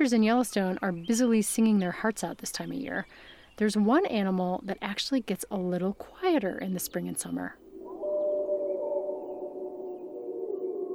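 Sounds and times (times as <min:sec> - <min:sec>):
speech: 0:00.0 - 0:07.6
wolves howling in chorus in Yellowstone: 0:07.8 - 0:10.9.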